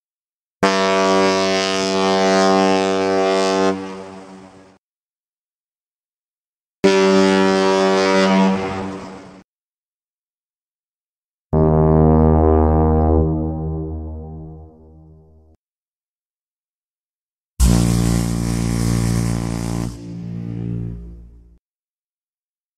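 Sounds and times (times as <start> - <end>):
boat horns: 0.6 - 4.6, 6.8 - 9.4, 11.6 - 15.4, 17.6 - 21.6.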